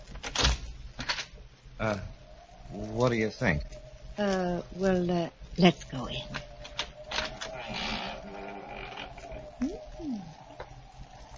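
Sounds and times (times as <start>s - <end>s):
faint noise: 0.0s - 11.3s
speech: 1.8s - 6.4s
unlocked door creaking open: 6.3s - 9.6s.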